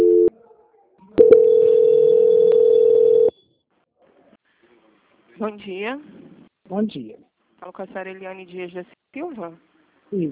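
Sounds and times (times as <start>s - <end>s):
telephone call-transfer tone on a bank call: 0.0s - 0.3s, 1.2s - 3.3s
speech: 5.4s - 10.3s.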